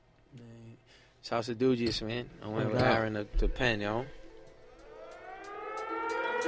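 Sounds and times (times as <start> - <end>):
speech: 1.2 - 4.2
siren-like horn sample in a freestyle hip-hop beat: 4.7 - 6.4.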